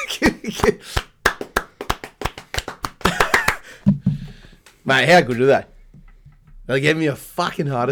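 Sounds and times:
hands clapping in a round of applause: 0.0 - 3.9
speech: 0.2 - 1.1, 4.9 - 5.7, 6.7 - 7.9.

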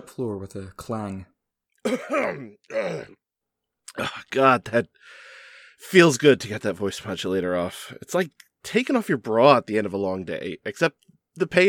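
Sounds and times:
speech: 0.1 - 3.2, 3.9 - 11.6
woman hacking and clearing her throat: 1.8 - 3.2.

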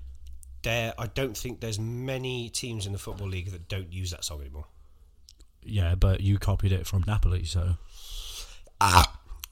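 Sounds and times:
speech: 0.6 - 4.8, 5.6 - 8.2, 8.8 - 9.2
throaty low-pitched burp into a microphone: 8.8 - 9.3.

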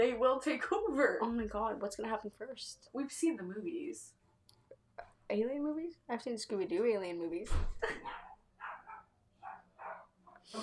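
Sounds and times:
speech: 0.0 - 4.2, 5.3 - 8.2, 10.5 - 10.6
dogs barking: 8.0 - 10.5.

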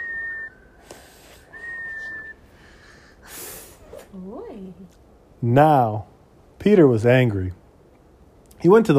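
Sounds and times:
tea kettle whistling: 0.0 - 2.4
breathy hiss: 0.6 - 4.3
speech: 4.2 - 7.6, 8.6 - 8.9.

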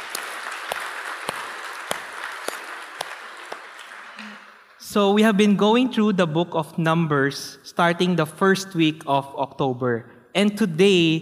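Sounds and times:
congregation clapping: 0.0 - 4.8
speech: 4.9 - 11.2.

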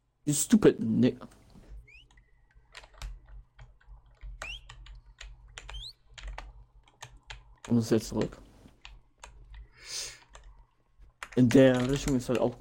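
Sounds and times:
speech: 0.2 - 1.4, 7.7 - 8.4, 11.4 - 12.5
faint electronic chirps: 1.8 - 2.8, 4.3 - 6.1
fast forceful typing on a computer keyboard: 2.0 - 10.6, 11.2 - 12.5.

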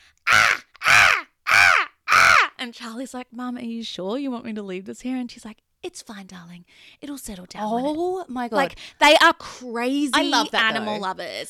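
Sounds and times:
human voice imitating a small bird's squawk: 0.3 - 2.6
speech: 2.6 - 11.4.

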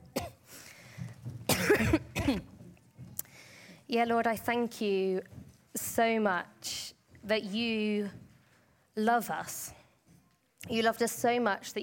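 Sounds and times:
person clearing throat during a religious service: 0.0 - 0.5, 1.5 - 2.6
person coughing during a religious service: 0.1 - 0.5, 1.5 - 2.5
speech: 1.8 - 2.5, 3.9 - 8.2, 9.0 - 9.8, 10.7 - 11.8.

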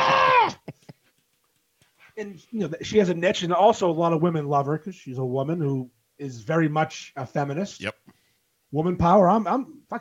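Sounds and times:
person imitating a woman's shrill high-pitched screeching voice: 0.0 - 0.6
speech: 2.2 - 8.0, 8.7 - 10.0.

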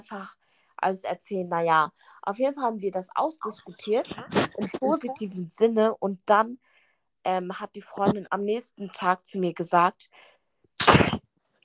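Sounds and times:
speech: 0.0 - 11.2
person sneezing: 10.8 - 11.2.

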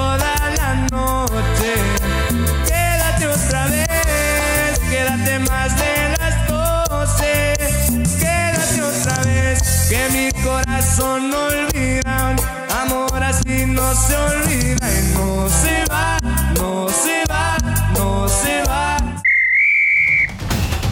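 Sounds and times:
busy upbeat music: 0.0 - 19.2
referee's whistle blast: 19.2 - 20.5.

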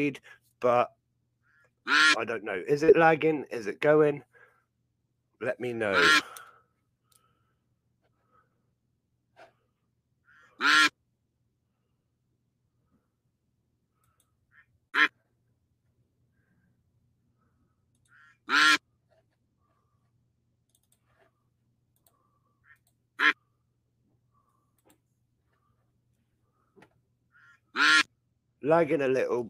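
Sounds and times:
speech: 0.0 - 1.0, 1.8 - 4.3, 5.4 - 6.4, 10.6 - 10.9, 28.7 - 29.4
duck quacking from online duck race: 1.8 - 2.2, 5.9 - 6.4, 10.4 - 11.0, 14.6 - 15.2, 18.2 - 18.8, 23.2 - 23.5, 27.4 - 28.1.

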